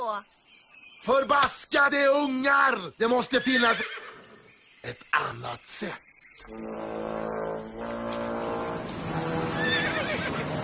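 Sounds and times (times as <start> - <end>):
speech: 0.2 - 0.4, 1.0 - 4.1, 4.8 - 7.4
horse neighing: 3.4 - 4.3, 9.3 - 10.5.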